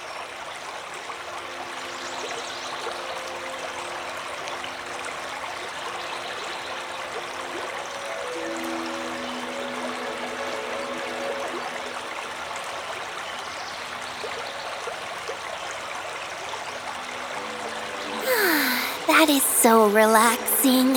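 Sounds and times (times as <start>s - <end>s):
small river flowing through a valley: 0.0s - 20.9s
speech: 19.2s - 20.9s.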